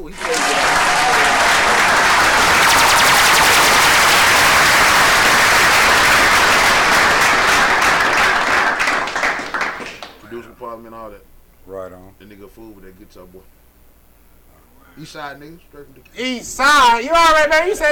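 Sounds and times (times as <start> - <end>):
speech: 0.0 - 0.6, 13.1 - 13.6, 15.0 - 17.9
loud dense crowd applause: 0.0 - 10.2.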